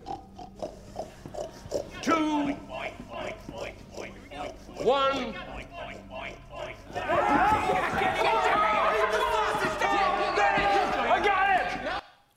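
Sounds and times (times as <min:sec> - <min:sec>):
person on the floor imitating pig oinking during a game: 0:00.0 - 0:06.4
laughter: 0:01.5 - 0:12.0
speech: 0:04.8 - 0:05.5.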